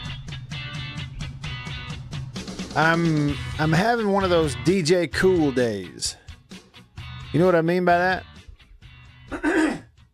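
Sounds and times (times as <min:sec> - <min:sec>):
speech: 0:02.8 - 0:06.2, 0:07.3 - 0:08.3
raspy throat clearing: 0:09.3 - 0:10.0.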